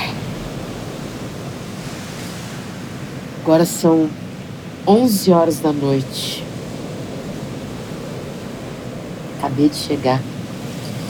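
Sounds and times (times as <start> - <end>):
sea waves breaking on a beach at night: 0.0 - 11.0
speech: 3.4 - 4.2, 4.8 - 6.4, 9.5 - 10.3.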